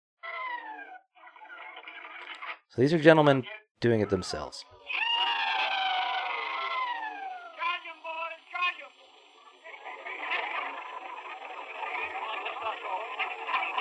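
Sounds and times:
speech: 2.7 - 5.0
group of men performing the rebel yell: 4.8 - 8.1
laughter: 4.9 - 7.6, 9.6 - 13.7.

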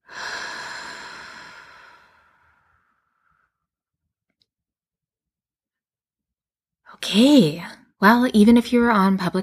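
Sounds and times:
slow deep breath during a guided breathing exercise: 0.0 - 3.7
speech: 7.0 - 9.4.

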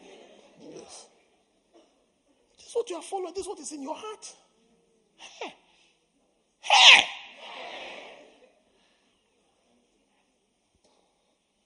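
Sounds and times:
speech: 2.8 - 4.5
person sneezing: 5.2 - 5.7, 6.6 - 7.8.

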